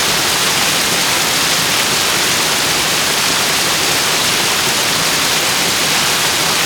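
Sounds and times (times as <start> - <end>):
waterfall: 0.0 - 6.6.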